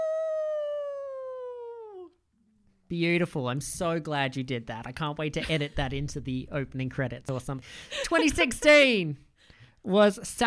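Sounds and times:
person imitating a wolf howl: 0.0 - 2.2
speech: 2.9 - 10.4.

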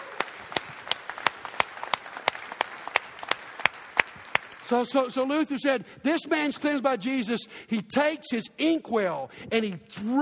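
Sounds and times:
roomful of people applauding: 0.0 - 4.9
speech: 4.7 - 10.2.

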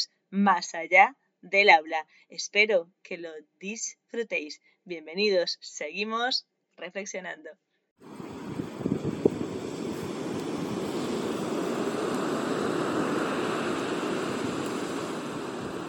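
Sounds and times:
speech: 0.0 - 8.3
steady sea waves washing in a broadband roar: 8.0 - 15.8.

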